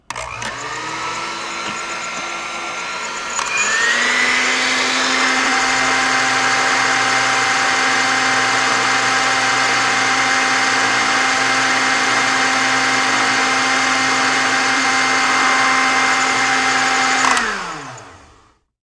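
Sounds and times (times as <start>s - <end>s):
mixer running: 0.0s - 18.6s.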